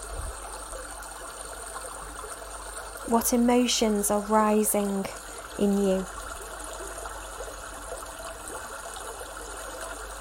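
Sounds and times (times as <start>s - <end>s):
bubbling brook water gurgling and splashing over stones: 0.0s - 10.1s
speech: 3.1s - 6.2s.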